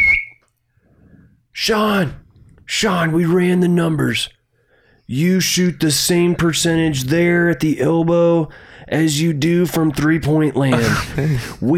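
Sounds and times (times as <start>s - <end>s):
coach's whistle blast: 0.0s - 0.4s
speech: 1.6s - 4.4s, 5.1s - 11.7s.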